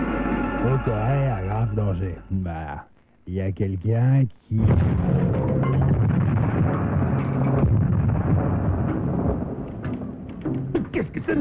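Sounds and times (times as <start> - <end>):
speech: 0.6 - 5.8, 10.9 - 11.3
video game explosion rumble with crackling bursts: 4.6 - 11.3.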